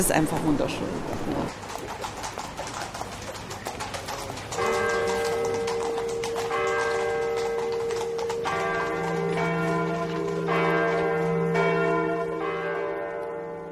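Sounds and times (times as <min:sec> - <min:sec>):
speech: 0:00.0 - 0:01.6
busy outdoor city ambience: 0:00.0 - 0:13.7
faint clopping: 0:01.4 - 0:11.7
church bells ringing with long overlapping tolls: 0:04.5 - 0:13.7.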